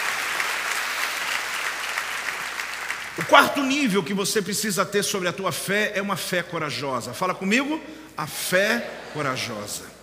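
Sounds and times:
audience applauding: 0:00.0 - 0:03.7
speech: 0:03.2 - 0:10.0.

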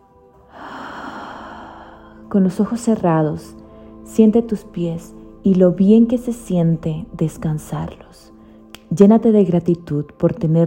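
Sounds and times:
slow deep breathing during a guided relaxation exercise: 0:00.5 - 0:02.3
speech: 0:02.3 - 0:08.3, 0:08.9 - 0:10.6.

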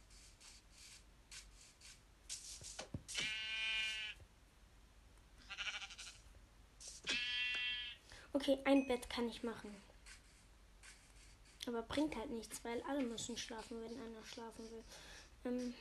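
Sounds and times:
video game sheep bleating: 0:03.1 - 0:04.2, 0:05.4 - 0:06.2, 0:07.0 - 0:08.0
speech: 0:08.4 - 0:09.9, 0:11.7 - 0:15.7.

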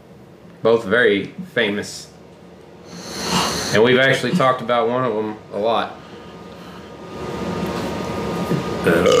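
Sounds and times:
low rumbling noise: 0:00.0 - 0:09.1
speech: 0:00.6 - 0:02.1, 0:03.7 - 0:06.0, 0:08.8 - 0:09.1
burp: 0:08.9 - 0:09.1.

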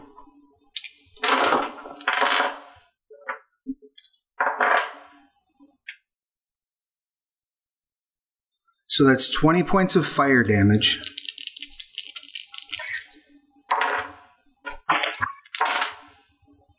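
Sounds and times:
dice clattering and rolling on a hard tabletop: 0:00.8 - 0:02.7, 0:10.8 - 0:13.1, 0:13.7 - 0:14.2, 0:15.4 - 0:16.1
speech: 0:08.9 - 0:11.1.

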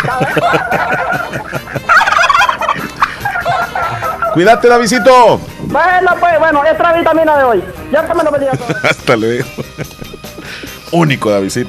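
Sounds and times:
laughter: 0:00.0 - 0:04.4, 0:08.0 - 0:10.8
turkeys gobbling: 0:00.0 - 0:08.5
speech: 0:00.1 - 0:01.3, 0:04.4 - 0:09.9, 0:10.9 - 0:11.6.

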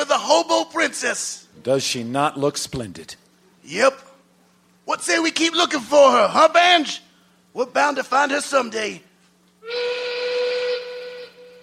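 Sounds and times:
speech: 0:00.2 - 0:04.1, 0:04.9 - 0:07.0, 0:07.6 - 0:09.9
steam locomotive train whistle: 0:09.6 - 0:11.6.

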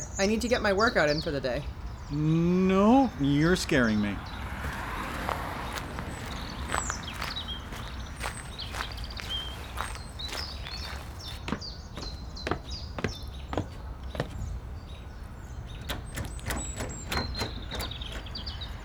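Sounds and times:
outdoor noise: 0:00.0 - 0:18.8
speech: 0:00.2 - 0:04.4
footsteps crunching: 0:03.4 - 0:15.1
clicks and knocks of someone trying a locked house door: 0:15.2 - 0:18.8.

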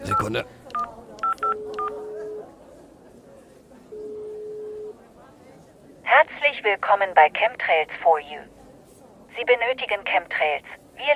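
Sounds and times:
mobile phone keypad dialing tones: 0:00.0 - 0:02.1
long steady phone ringing tones: 0:00.0 - 0:02.5, 0:03.9 - 0:05.0
faint noise: 0:00.0 - 0:11.1
speech: 0:00.2 - 0:00.6, 0:06.2 - 0:08.6, 0:09.4 - 0:11.1.

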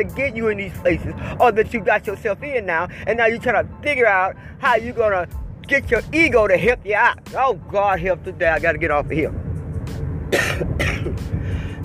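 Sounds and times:
speech: 0:00.0 - 0:10.9
steady low rumble: 0:04.5 - 0:11.8
harsh coughing with throat-clearing: 0:10.3 - 0:11.2.

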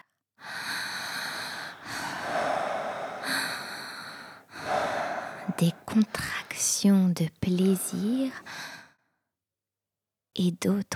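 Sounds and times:
heavy rapid rasping breathing: 0:00.4 - 0:08.9
speech: 0:05.6 - 0:08.6, 0:10.4 - 0:10.9.

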